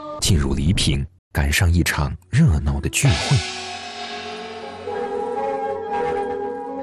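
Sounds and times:
speech: 0.2 - 3.7
drums beating at village festival: 3.0 - 6.5
gongs beating at village festival: 3.1 - 6.8.

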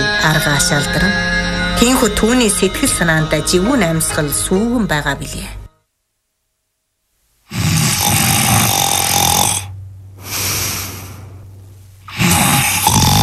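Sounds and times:
low steady drone: 0.0 - 5.8, 8.3 - 13.2
speech: 0.2 - 5.6
man snoring in an adjoining study: 7.5 - 11.3, 12.1 - 13.2.

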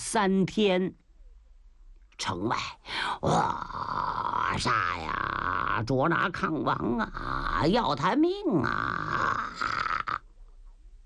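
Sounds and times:
speech: 0.1 - 1.0, 2.2 - 9.8
voice imitating snoring: 3.2 - 5.9, 6.9 - 7.9, 8.5 - 10.3.

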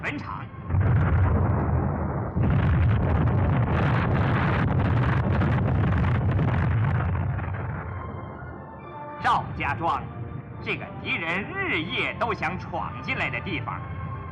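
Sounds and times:
speech: 0.0 - 0.8, 9.3 - 13.9
landmine explosions in a rolling barrage: 0.6 - 8.4.

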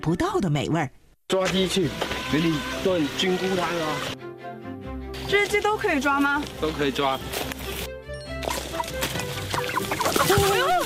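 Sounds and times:
speech: 0.0 - 4.2, 5.3 - 7.4, 10.2 - 10.8
busy scuffling background: 5.2 - 10.8
rooster clucking and squawking: 8.4 - 10.8.

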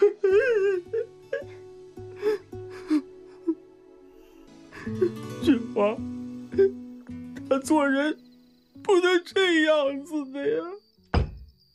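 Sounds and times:
distressed person crying and whimpering: 0.0 - 3.8, 4.6 - 5.3, 6.5 - 6.8
speech: 4.9 - 6.8, 7.6 - 8.2, 8.9 - 10.8.

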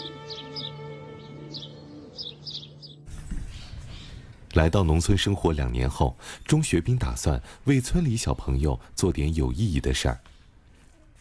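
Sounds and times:
birds chirping in the early morning: 0.0 - 7.4
speech: 4.6 - 10.3.

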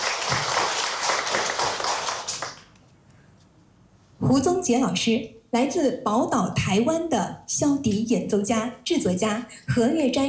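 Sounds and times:
audience applause: 0.0 - 2.7
speech: 4.2 - 10.2.

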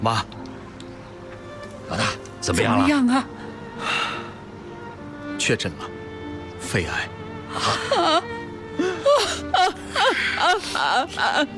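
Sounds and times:
speech: 0.0 - 0.4, 1.9 - 4.1, 5.4 - 6.0, 6.6 - 11.5
mother wailing and sobbing in grief: 7.5 - 11.5.

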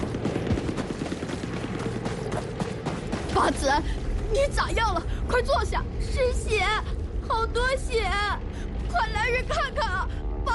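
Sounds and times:
machine gun firing at a ferry crossing during a battle: 0.0 - 3.5
speech: 3.4 - 10.2.

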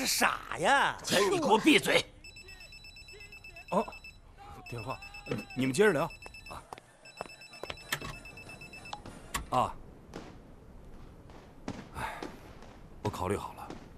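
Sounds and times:
speech: 0.1 - 2.1, 3.7 - 4.0, 4.7 - 6.7, 9.5 - 9.8, 13.1 - 13.6
telephone ringing: 2.2 - 9.0.

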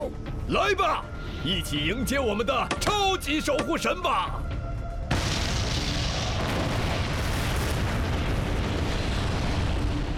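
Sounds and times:
speech: 0.5 - 4.5
explosion setting off a volcanic eruption: 5.1 - 10.1
volcanic eruption with a loud rumbling roar: 5.1 - 10.1.

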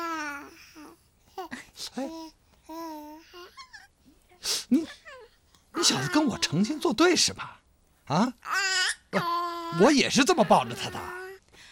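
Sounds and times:
baby crying: 0.0 - 1.0, 5.0 - 6.8, 8.5 - 11.4
speech: 1.8 - 2.8, 5.9 - 11.2.

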